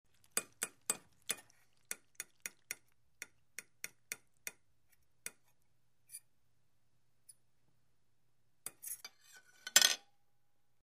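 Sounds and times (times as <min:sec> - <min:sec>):
fork on a plate: 0:00.2 - 0:06.3, 0:08.7 - 0:10.1.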